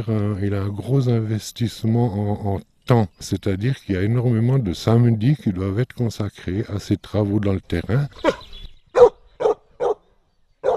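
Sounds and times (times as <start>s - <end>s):
speech: 0.0s - 8.4s
Bavarian mountain hound barking during a hunting demonstration: 9.0s - 10.0s.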